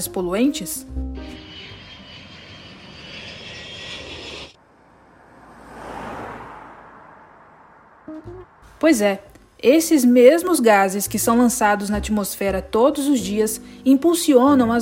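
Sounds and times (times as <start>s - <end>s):
speech: 0.0s - 1.4s, 8.8s - 14.7s
airplane engine flying overhead: 1.2s - 4.6s.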